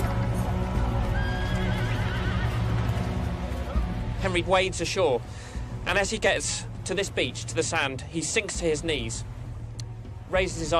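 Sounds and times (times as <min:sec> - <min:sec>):
horse hooves clopping: 0:00.0 - 0:04.6
horse whinnying with a long wavering cry: 0:01.1 - 0:03.0
speech: 0:04.2 - 0:09.4, 0:10.3 - 0:10.7.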